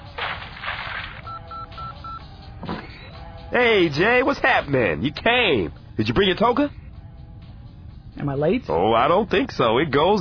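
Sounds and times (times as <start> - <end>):
phone keypad dialing tones: 1.3 - 2.2
speech: 3.5 - 6.8, 8.2 - 10.1.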